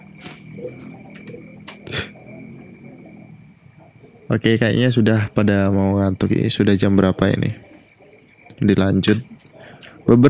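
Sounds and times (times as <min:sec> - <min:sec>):
motorcycle engine rumbling at night: 0:00.0 - 0:08.0
speech: 0:04.3 - 0:07.7, 0:08.6 - 0:09.3, 0:10.1 - 0:10.2.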